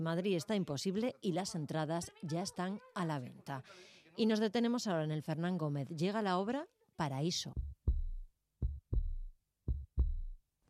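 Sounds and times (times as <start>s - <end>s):
speech: 0.0s - 7.7s
deep booming heartbeat: 7.6s - 10.4s.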